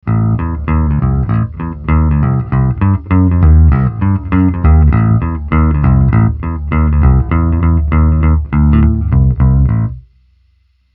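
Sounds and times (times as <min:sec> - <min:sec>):
Epiphone bass guitar bridge sound: 0:00.0 - 0:10.1.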